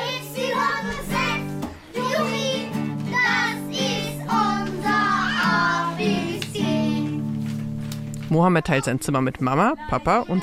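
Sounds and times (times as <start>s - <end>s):
group of children singing together in unison: 0.0s - 7.3s
speech: 8.3s - 10.4s.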